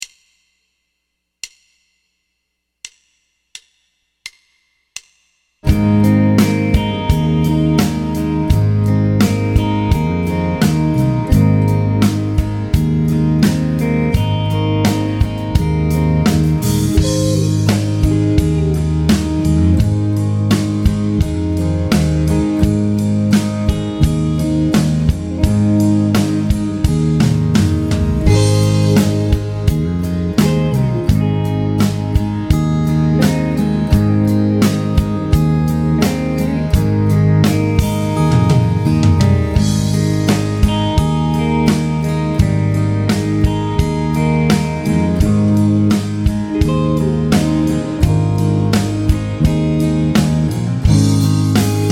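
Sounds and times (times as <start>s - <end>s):
triad vamp in A-flat major: 5.6s - 51.9s.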